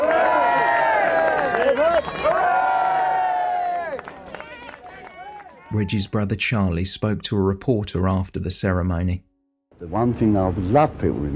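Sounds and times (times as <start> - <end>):
crowd cheering and shouting: 0.0 - 6.1
speech: 5.7 - 11.3.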